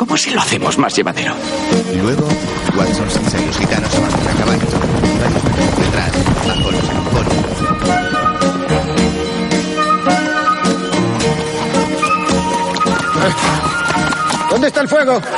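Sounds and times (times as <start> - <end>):
speech: 0.1 - 8.3, 14.5 - 15.3
horse galloping with rider bouncing on a small saddle: 1.8 - 9.9, 10.7 - 15.3.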